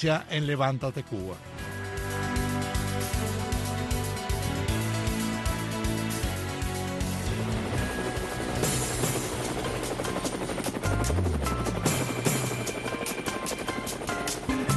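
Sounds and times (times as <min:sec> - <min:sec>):
speech: 0:00.0 - 0:01.6
helicopter sound effect with rotor thump and engine drone: 0:01.6 - 0:14.7.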